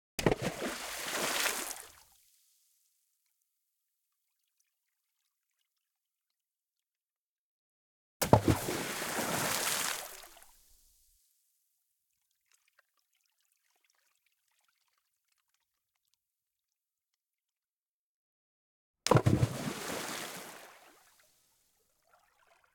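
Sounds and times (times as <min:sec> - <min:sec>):
large rocks splashing into a glacial lake: 0:00.2 - 0:02.0, 0:08.2 - 0:10.3, 0:19.1 - 0:20.8.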